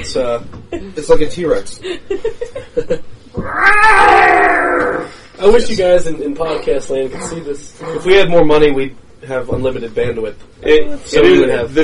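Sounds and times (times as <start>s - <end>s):
speech: 0.0s - 11.8s
cat with half-size front legs meowing and yowling: 3.4s - 5.1s.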